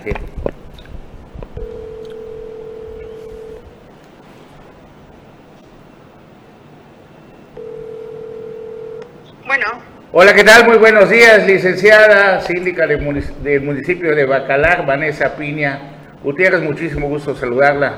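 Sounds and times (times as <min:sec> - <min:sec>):
speech: 0:00.0 - 0:00.2, 0:10.2 - 0:17.9
faint hiss: 0:00.0 - 0:17.9
telephone line click: 0:01.6 - 0:03.4
telephone ringing tones as a call is placed: 0:01.6 - 0:03.6, 0:07.6 - 0:09.1.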